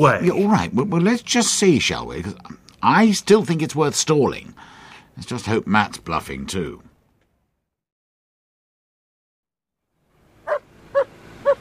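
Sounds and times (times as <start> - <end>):
speech: 0.0 - 6.9
dog barking short sharp woofs: 10.5 - 11.5.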